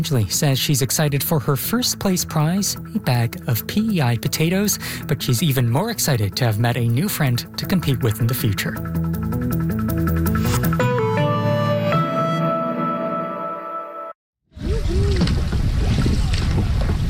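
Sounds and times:
speech: 0.0s - 10.1s
music: 0.0s - 14.2s
wind-blown water on a long, deep lake in central Newfoundland: 14.6s - 17.0s.

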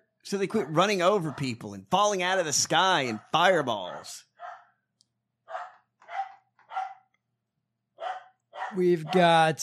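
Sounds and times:
speech: 0.2s - 4.3s, 8.7s - 9.6s
female dog barking at the door: 0.5s - 1.6s, 3.1s - 4.8s, 5.5s - 7.1s, 8.0s - 9.4s.

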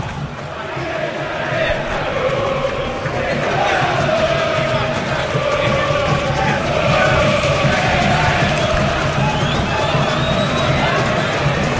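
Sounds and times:
stadium crowd of football fans chanting and singing: 0.0s - 11.7s.

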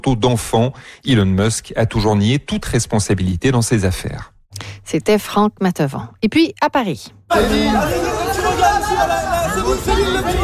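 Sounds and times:
speech: 0.0s - 10.4s
crowd of fans cheering and chanting a singer's name in Paris: 7.3s - 10.4s.

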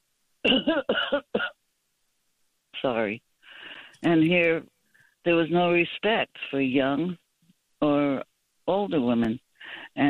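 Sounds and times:
harsh rasping coughing: 0.5s - 1.6s
speech: 0.6s - 1.2s, 2.8s - 3.2s, 4.0s - 7.2s, 8.7s - 10.0s.

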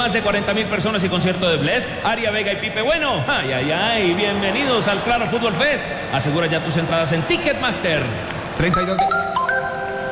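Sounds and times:
speech: 0.0s - 9.4s
station identification jingle chimes for football match coverage: 8.7s - 10.1s.

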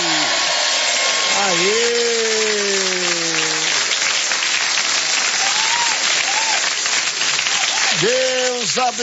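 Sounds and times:
brief sustained voice tone: 0.0s - 0.5s, 1.3s - 3.8s
faint cheering or whoops: 0.0s - 4.0s, 5.2s - 8.9s
room full of people applauding for birthday celebrants: 0.0s - 9.0s
speech: 1.4s - 1.9s, 8.8s - 9.0s.

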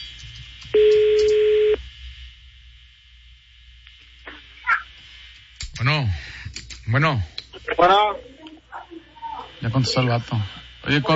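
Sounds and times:
low hum: 0.0s - 11.1s
phone line noise: 0.7s - 1.8s
telephone ringback tone while redialing a call: 0.8s - 1.8s
speech: 6.9s - 8.3s, 9.6s - 11.1s.

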